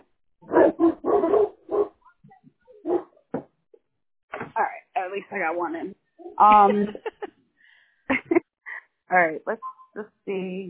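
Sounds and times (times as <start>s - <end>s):
big dog barking: 0.4s - 2.0s, 2.8s - 3.2s
speech: 5.2s - 7.1s, 9.1s - 10.6s
laughter: 6.4s - 7.3s, 8.1s - 8.4s.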